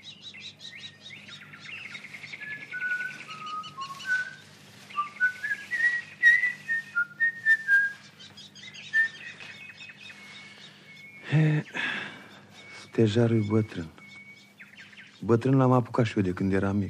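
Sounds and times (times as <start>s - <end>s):
brief noisy rustle: 0.0s - 16.6s
steady low hum: 0.9s - 15.0s
person whistling a lilting melody: 5.1s - 7.9s
speech: 11.4s - 11.7s, 13.0s - 14.0s, 15.2s - 16.8s.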